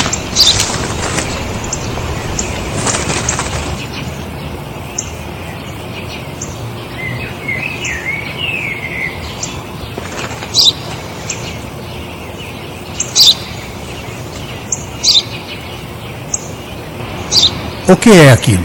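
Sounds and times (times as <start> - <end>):
sparrow wings fluttering: 0.0 - 5.4, 9.2 - 17.9
sparrow chirping: 0.0 - 18.6
speech: 18.0 - 18.6.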